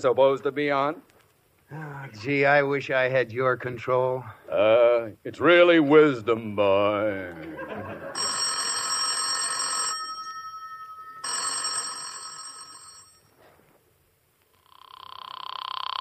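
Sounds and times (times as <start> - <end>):
speech: 0.0 - 1.1, 1.7 - 8.0
laughter: 7.3 - 8.4
telephone bell ringing: 8.0 - 13.3.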